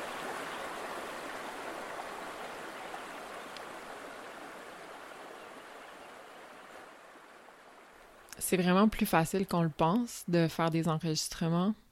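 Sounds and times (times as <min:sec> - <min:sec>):
river water rushing: 0:00.0 - 0:08.3
speech: 0:08.4 - 0:11.8.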